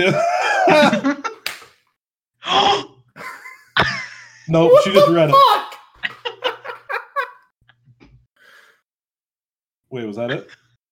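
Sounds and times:
speech: 0:00.0 - 0:01.2, 0:04.5 - 0:05.6, 0:10.0 - 0:10.6
laughter: 0:00.0 - 0:01.4, 0:06.0 - 0:07.5
playful love slap: 0:01.4 - 0:01.8
breathy, drawn-out vocal sounds: 0:02.4 - 0:03.0.

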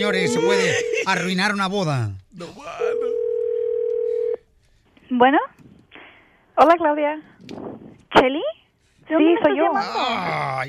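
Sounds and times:
telephone ringing tone while placing a call: 0:00.0 - 0:01.2, 0:02.8 - 0:04.4
speech: 0:00.0 - 0:02.8, 0:05.1 - 0:05.6, 0:06.6 - 0:10.6
laughter: 0:00.2 - 0:01.3.

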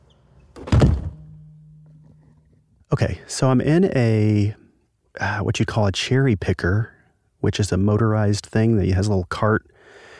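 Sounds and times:
heavy chamber door shutting with a deep solid thunk: 0:00.6 - 0:01.3
low steady hum in an enclosed space: 0:00.7 - 0:08.9
speech: 0:03.0 - 0:04.6, 0:05.2 - 0:10.0.

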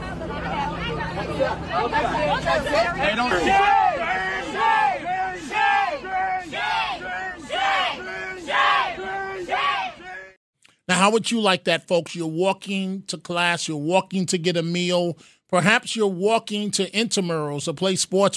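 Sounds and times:
hubbub of overlapping voices and shouts: 0:00.0 - 0:10.4
crowd of demonstrators chanting on a university campus: 0:00.3 - 0:10.4
speech: 0:01.2 - 0:03.9, 0:11.0 - 0:18.3.

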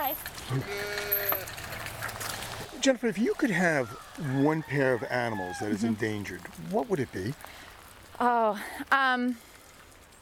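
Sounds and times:
outdoor noise: 0:00.0 - 0:10.2
speech: 0:00.1 - 0:00.9, 0:02.8 - 0:09.5
sheep bleating: 0:00.5 - 0:01.6.

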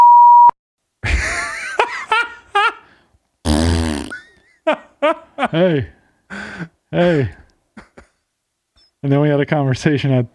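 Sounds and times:
censor bleep covering a person's name: 0:00.0 - 0:00.6
laughter: 0:01.0 - 0:02.8, 0:07.0 - 0:08.2
speech: 0:05.1 - 0:06.0, 0:06.6 - 0:07.4, 0:09.0 - 0:10.3.

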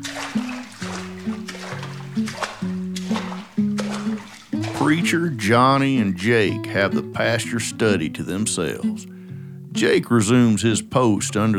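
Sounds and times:
mop pushing water across a floor: 0:00.0 - 0:05.9
low steady musical tone: 0:00.0 - 0:11.5
speech: 0:04.8 - 0:09.1, 0:09.8 - 0:11.5.

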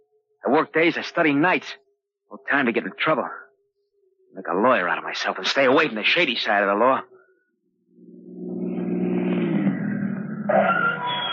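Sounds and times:
speech: 0:00.4 - 0:03.4, 0:04.4 - 0:07.1
car engine starting up and revving: 0:08.0 - 0:11.3.

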